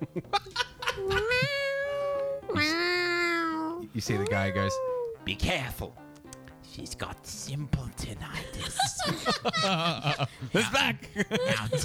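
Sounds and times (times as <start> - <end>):
person imitating cat meows: 1.0 - 5.2
speech: 4.0 - 6.0, 6.7 - 11.8
laughter: 8.4 - 11.8.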